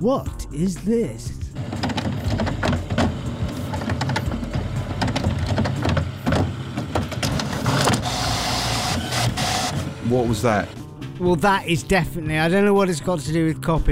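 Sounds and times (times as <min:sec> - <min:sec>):
speech: 0:00.0 - 0:01.7, 0:10.1 - 0:13.8
clicks and clunks of paper moving through a photocopier: 0:01.6 - 0:10.1
photocopier running with mechanical whir: 0:01.6 - 0:10.8.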